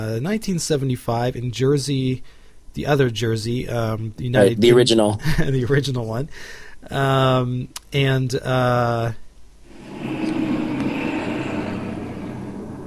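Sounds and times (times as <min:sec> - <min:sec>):
speech: 0:00.0 - 0:09.2
loud steady tonal blasts: 0:09.7 - 0:12.8
truck driving past outside: 0:09.7 - 0:12.8.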